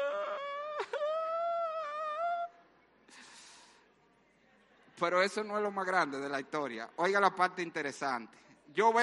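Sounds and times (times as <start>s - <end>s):
boy crying and whimpering at home: 0.0s - 2.5s
speech: 5.0s - 9.0s.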